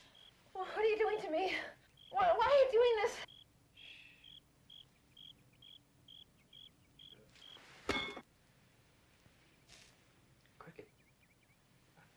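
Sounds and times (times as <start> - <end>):
caught cricket chirping in short high pulses: 0.0 - 0.5, 1.7 - 7.6
speech: 0.9 - 3.3.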